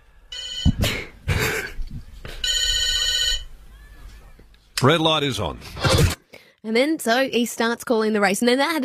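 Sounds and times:
old-fashioned telephone bell ringing with a metallic jangling trill: 0.3s - 0.8s, 2.4s - 3.5s
speech: 4.8s - 8.8s.

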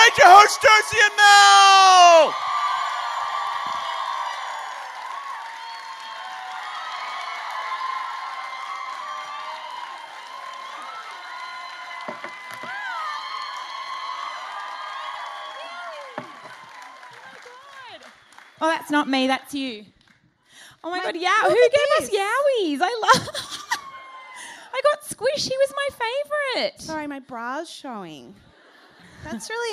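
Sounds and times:
live audience cheering and whooping: 0.0s - 18.6s, 23.5s - 24.6s
audience clapping: 0.0s - 22.3s
speech: 0.2s - 2.6s, 18.9s - 20.0s, 20.8s - 23.5s, 25.0s - 28.5s, 29.2s - 29.7s.

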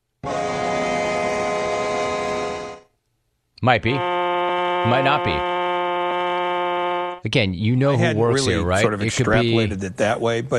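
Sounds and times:
sustained train horn blast: 0.2s - 2.9s, 3.9s - 7.2s
speech: 3.6s - 4.2s, 4.8s - 5.5s, 7.2s - 10.5s.

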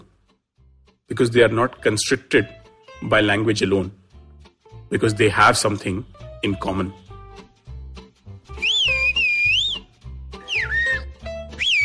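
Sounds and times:
speech: 1.1s - 4.0s, 4.9s - 7.1s
person whistling in a whistled language: 8.6s - 11.8s.

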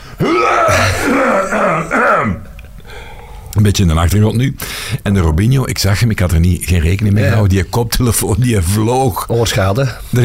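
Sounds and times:
person clearing throat as a sound check: 0.3s - 2.6s
speech: 3.6s - 10.2s.

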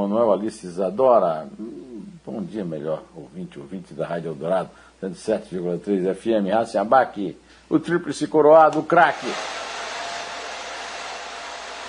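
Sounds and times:
speech: 0.0s - 9.6s
hair dryer blowing: 9.1s - 11.8s.

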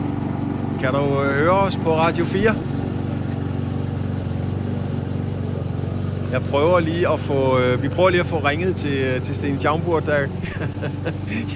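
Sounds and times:
lawnmower engine running: 0.0s - 11.5s
speech: 0.8s - 2.8s, 6.3s - 11.5s
laughter: 10.3s - 11.5s.

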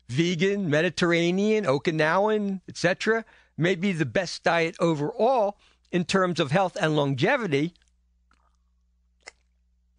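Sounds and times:
faint steady hum: 0.0s - 9.9s
speech: 0.1s - 7.8s
swallowing: 7.8s - 9.7s
person sipping water: 7.8s - 9.9s.

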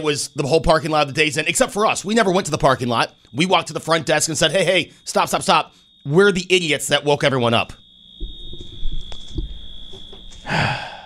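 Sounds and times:
speech: 0.0s - 8.3s, 10.5s - 10.9s
smoke alarm high-pitched tone in a studio: 0.0s - 11.0s
burst of rustling noise: 8.2s - 10.5s.

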